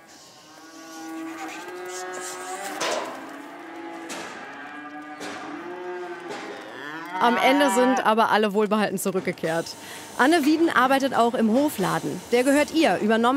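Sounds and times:
young cattle mooing while driven onto a transport trailer on a farm: 0.4 - 8.2
speech: 7.2 - 13.3.

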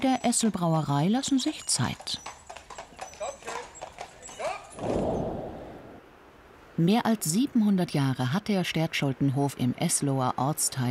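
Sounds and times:
speech: 0.0 - 2.4, 6.8 - 10.8
horse hooves clip-clopping: 0.0 - 5.0
horse whinnying: 2.2 - 5.2
rumbling rush of movement: 4.8 - 6.1.

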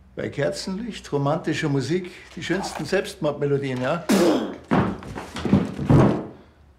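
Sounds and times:
speech: 0.2 - 4.8
person collapsing onto the floor: 4.4 - 6.4.

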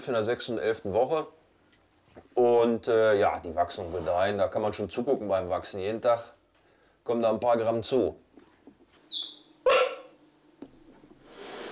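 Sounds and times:
speech: 0.0 - 1.4, 2.2 - 6.4, 7.0 - 8.2, 9.1 - 9.8
cheetah cubs chirping: 9.1 - 10.1.

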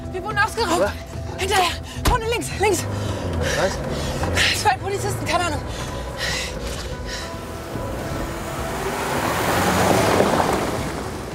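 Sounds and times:
speech: 0.1 - 6.5
blue four-door car driving away: 2.4 - 11.3.

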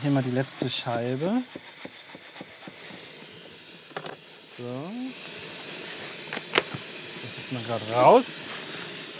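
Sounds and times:
speech: 0.0 - 1.7, 4.6 - 5.3, 7.5 - 8.6
water running from a tap into a washbasin: 0.0 - 9.1.

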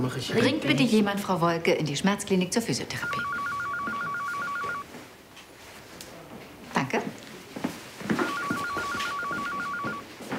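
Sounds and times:
speech: 0.0 - 3.4
telephone ringing with a warbling electronic trill: 3.0 - 4.9, 8.2 - 10.1.

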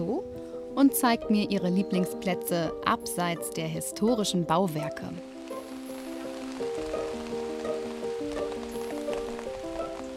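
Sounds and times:
speech: 0.0 - 5.3
soft melodic tune of sustained notes: 0.0 - 10.1
rain pattering outdoors in Eggerode, Germany: 4.3 - 10.1.

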